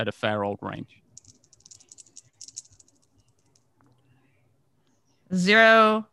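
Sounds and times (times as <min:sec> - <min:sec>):
speech: 0:00.0 - 0:01.0, 0:05.3 - 0:06.1
dice clattering: 0:01.2 - 0:03.6.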